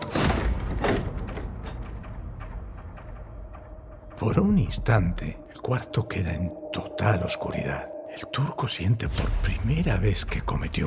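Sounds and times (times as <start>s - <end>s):
room door opening and closing with a mechanical scrape: 0.0s - 3.1s
speech: 4.2s - 10.8s.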